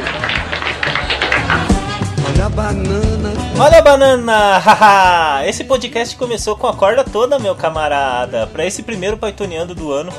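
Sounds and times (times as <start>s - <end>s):
group of old women applauding: 0.0s - 2.3s
speech: 2.6s - 10.1s.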